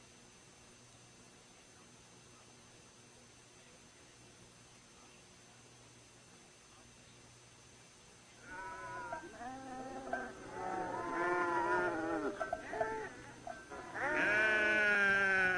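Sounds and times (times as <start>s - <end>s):
goats bleating: 8.4s - 15.5s.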